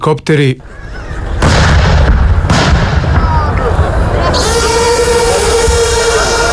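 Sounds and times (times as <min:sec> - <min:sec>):
speech: 0:00.0 - 0:01.0
constant loud rumble: 0:01.2 - 0:06.5
heavy artillery blasts during a military exercise: 0:01.4 - 0:04.0.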